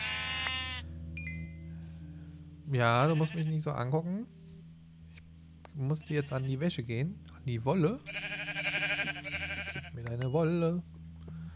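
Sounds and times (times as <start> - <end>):
video game sheep bleat: 0.0 - 0.9, 3.0 - 3.6, 8.0 - 10.0
steady low hum: 0.0 - 11.5
speech: 2.7 - 4.4, 5.8 - 8.4, 10.0 - 10.9.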